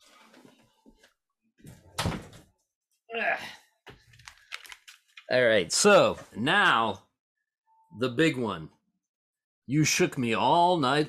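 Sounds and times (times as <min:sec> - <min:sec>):
door swinging shut with a solid thud: 0:01.6 - 0:02.5
person sighing: 0:03.1 - 0:03.8
speech: 0:05.3 - 0:07.0, 0:08.0 - 0:08.8, 0:09.7 - 0:11.0.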